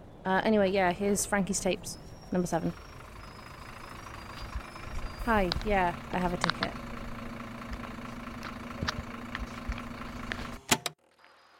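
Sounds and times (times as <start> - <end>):
speech: 0.2 - 2.9, 5.3 - 6.8
large vehicle engine idling: 2.2 - 10.6.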